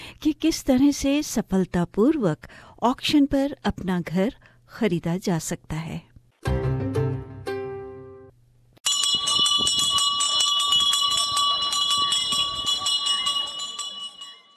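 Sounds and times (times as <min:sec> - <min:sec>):
speech: 0:00.2 - 0:06.6
auction bell struck: 0:08.8 - 0:14.5.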